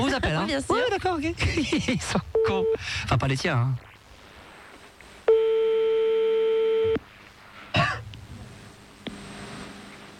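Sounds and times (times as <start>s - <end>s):
speech: 0.2s - 3.9s
electronic telephone line tone while dialing a call: 5.3s - 7.0s
person clearing throat: 7.7s - 8.1s.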